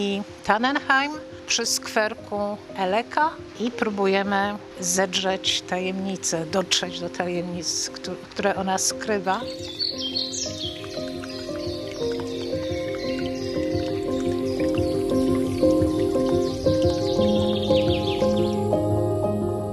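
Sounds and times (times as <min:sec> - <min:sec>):
speech: 0:00.0 - 0:10.6
light rain dripping by a porch: 0:00.0 - 0:19.6
birds chirping and tweeting: 0:09.1 - 0:19.2.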